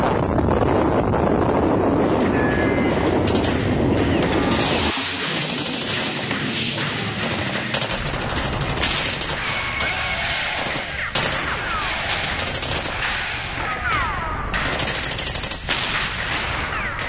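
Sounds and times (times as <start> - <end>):
heavy booms of shelling: 0.0 - 17.0
sustained automatic gunfire: 3.2 - 17.0.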